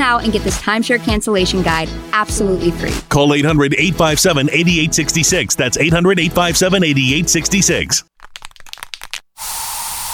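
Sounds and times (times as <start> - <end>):
speech: 0.1 - 8.2
aerosol bug spray hissing in a home: 9.4 - 10.1.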